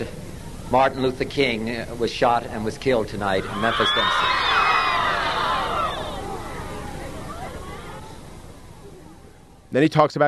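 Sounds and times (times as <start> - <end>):
speech: 0.0 - 4.6, 9.7 - 10.2
murmur of many voices: 0.0 - 9.8
large outdoor crowd gasping in shock: 3.3 - 8.0.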